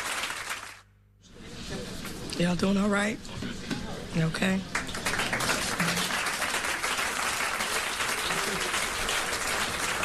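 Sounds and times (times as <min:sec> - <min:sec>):
audience applauding: 0:00.0 - 0:00.8, 0:04.7 - 0:10.0
speech: 0:02.4 - 0:03.5, 0:04.1 - 0:04.8.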